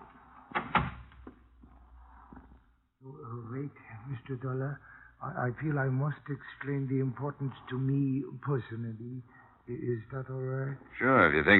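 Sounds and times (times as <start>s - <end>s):
door creaking as it swings: 0.0s - 1.4s
speech: 3.7s - 11.5s.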